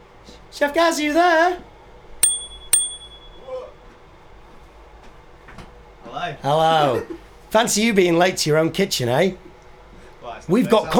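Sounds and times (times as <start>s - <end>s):
speech: 0.6s - 1.7s, 6.3s - 9.4s, 10.4s - 10.9s
small bell dinging: 2.2s - 3.5s.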